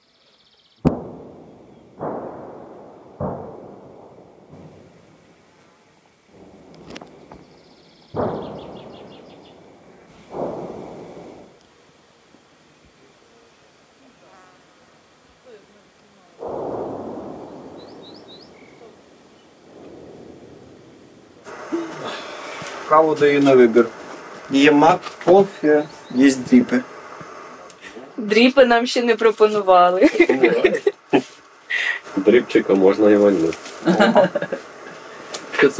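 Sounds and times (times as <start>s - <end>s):
artillery shell impacts near Bakhmut, Ukraine, as rumbling booms: 0.8s - 11.6s, 16.4s - 28.1s
laughter: 21.5s - 22.6s, 30.0s - 32.2s, 33.8s - 35.2s
speech: 22.9s - 26.9s, 28.3s - 30.9s, 32.2s - 34.6s.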